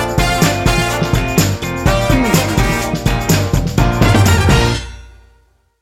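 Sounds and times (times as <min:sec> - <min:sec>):
happy upbeat retro soul sting bumper: 0:00.2 - 0:04.7.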